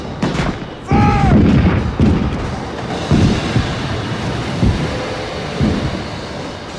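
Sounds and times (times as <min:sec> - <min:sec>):
artillery battery firing its cannons: 0:00.2 - 0:03.8
rough windy roar: 0:00.6 - 0:06.7.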